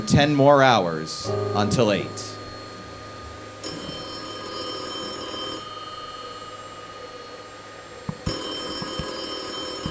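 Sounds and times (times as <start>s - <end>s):
speech: 0.0s - 2.4s
telephone bell ringing: 3.6s - 6.4s, 8.2s - 9.8s.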